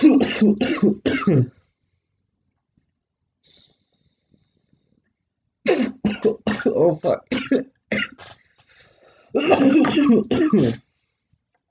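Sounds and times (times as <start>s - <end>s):
harsh hacking coughing fit: 0.0s - 1.5s, 5.7s - 8.3s, 9.4s - 10.8s
speech: 0.0s - 1.6s, 6.2s - 8.4s, 9.3s - 10.8s.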